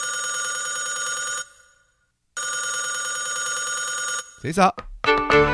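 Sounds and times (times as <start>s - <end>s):
telephone bell ringing with a metallic trill: 0.0s - 4.4s
speech: 4.4s - 5.4s.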